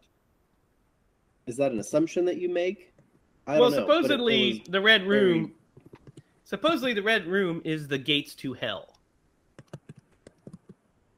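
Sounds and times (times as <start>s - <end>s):
speech: 1.5s - 5.6s, 6.5s - 8.9s
typing on a computer keyboard: 9.6s - 10.8s.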